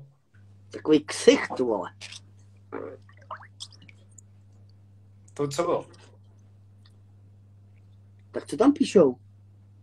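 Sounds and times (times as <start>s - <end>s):
steady low mechanical hum: 0.0s - 9.8s
speech: 0.7s - 2.8s, 5.4s - 6.0s, 8.4s - 9.2s
whirlpool bathtub water bubbling: 2.0s - 4.8s.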